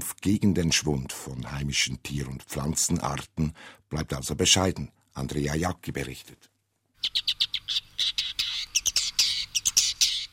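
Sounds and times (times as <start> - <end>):
speech: 0.2 - 7.4
woodchat shrike calling: 7.0 - 10.3.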